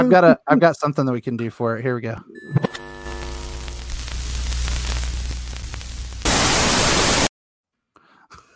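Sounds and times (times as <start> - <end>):
speech: 0.0 - 2.7
rumbling buzzing noise with a low hum: 2.4 - 7.3
loud flat burst of TV static hissing: 2.7 - 7.3.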